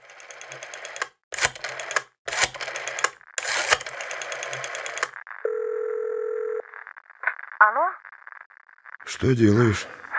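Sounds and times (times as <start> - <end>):
telephone number being dialed: 0.0 - 6.6
speech: 9.2 - 10.0.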